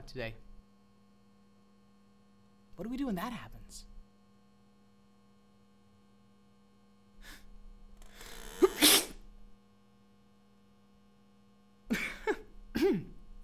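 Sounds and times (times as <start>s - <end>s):
faint steady electrical hum: 0.0s - 13.4s
speech: 0.1s - 0.5s, 2.8s - 3.9s
quick sharp intake of breath: 7.2s - 7.5s, 8.1s - 9.2s
short breathy bursts: 7.2s - 9.2s
loud sneeze: 8.2s - 9.2s.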